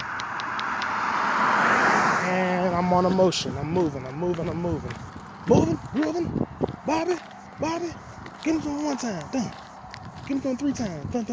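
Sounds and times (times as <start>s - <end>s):
faint high ticks: 0.0s - 1.0s
car passing on a road at night: 0.0s - 11.3s
car tire and engine roar: 0.0s - 11.3s
speech: 2.9s - 9.6s, 10.3s - 11.3s.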